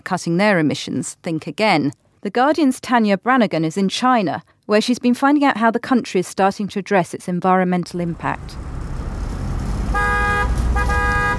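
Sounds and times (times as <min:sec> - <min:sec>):
speech: 0:00.1 - 0:08.8
busy city traffic rumble: 0:07.9 - 0:11.3
car horn blasts: 0:09.8 - 0:11.3.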